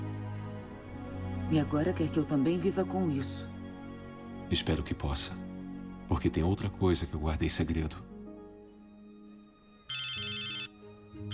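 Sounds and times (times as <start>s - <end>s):
low tonal background: 0.0s - 11.3s
speech: 1.5s - 3.5s, 4.5s - 5.4s, 6.1s - 8.1s
phone ringtone: 9.9s - 11.3s.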